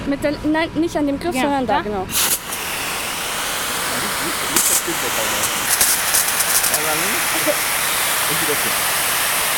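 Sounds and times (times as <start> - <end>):
speech: 0.1 - 2.4, 6.9 - 9.0
water jet blasting from a hand-held fire hose nozzle: 2.1 - 9.5.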